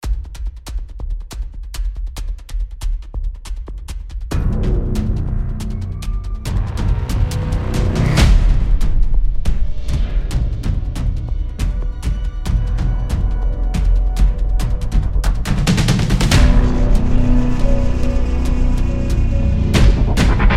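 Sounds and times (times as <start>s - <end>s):
drum ensemble: 0.0s - 20.5s.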